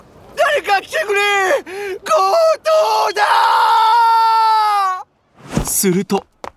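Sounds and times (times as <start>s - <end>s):
jewelry shop manager shouting in alarm after a robbery: 0.4s - 5.0s
speech: 5.8s - 6.3s.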